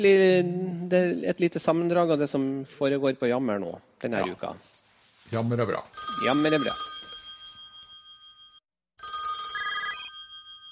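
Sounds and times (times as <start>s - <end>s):
speech: 0.0s - 4.7s, 5.3s - 6.8s
telephone ringing: 6.0s - 10.6s.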